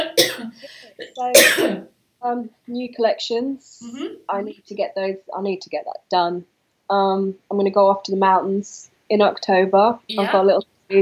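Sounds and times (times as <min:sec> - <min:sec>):
person coughing: 0:00.0 - 0:01.8
throaty voiced sound: 0:00.0 - 0:01.8
speech: 0:01.2 - 0:10.9.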